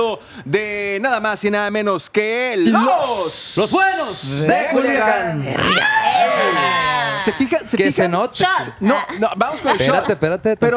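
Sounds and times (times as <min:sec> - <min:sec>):
speech: 0:00.0 - 0:10.7
rapid excited talking: 0:02.6 - 0:10.7
group shouting a cheer: 0:05.0 - 0:07.4.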